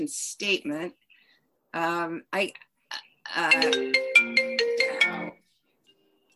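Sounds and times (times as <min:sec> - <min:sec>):
speech: 0:00.0 - 0:01.0, 0:01.7 - 0:04.4
bright electronic ringtone melody from a computer: 0:03.4 - 0:05.6.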